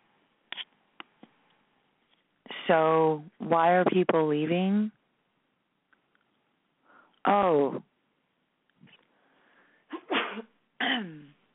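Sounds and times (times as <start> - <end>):
speech: 2.7 - 5.0, 7.3 - 7.9, 10.9 - 11.3
person sneezing: 9.9 - 11.3.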